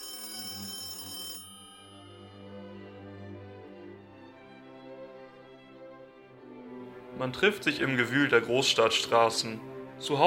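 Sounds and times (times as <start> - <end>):
bright rattling telephone bell ringing loudly: 0.0 - 3.2
sustained instrumental accompaniment: 1.4 - 10.2
speech: 7.2 - 10.2.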